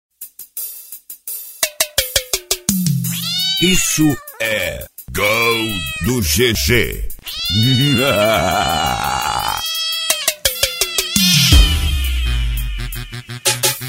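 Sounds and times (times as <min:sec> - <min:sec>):
cat meowing: 0:03.0 - 0:13.6
speech: 0:03.6 - 0:09.4.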